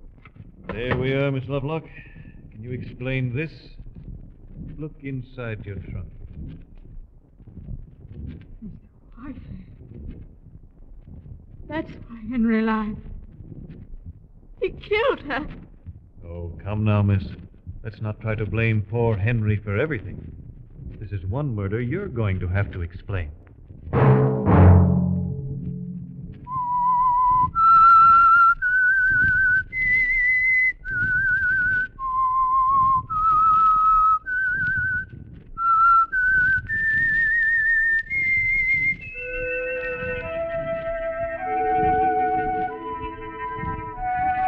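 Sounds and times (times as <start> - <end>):
speech: 0.7 - 3.8, 4.6 - 6.2, 11.7 - 13.1, 14.7 - 15.7, 16.3 - 20.4, 21.1 - 23.4
low thump: 23.9 - 27.0
soft orchestral swell: 24.0 - 26.5
person whistling a slow eerie radio signal tune: 26.5 - 44.4.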